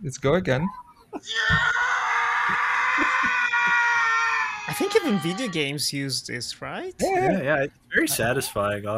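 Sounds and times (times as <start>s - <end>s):
speech: 0.0s - 1.8s, 4.7s - 8.9s
person screaming: 1.2s - 5.7s.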